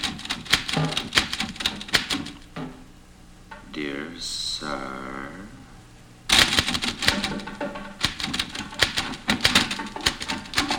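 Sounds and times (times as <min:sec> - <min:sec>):
typewriter keys clacking: 0:00.0 - 0:02.5, 0:06.3 - 0:10.7.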